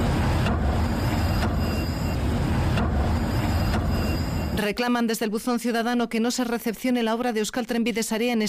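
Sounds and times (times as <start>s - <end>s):
bus engine rumbling on a newly repaved street: 0.0s - 4.6s
speech: 4.6s - 8.4s.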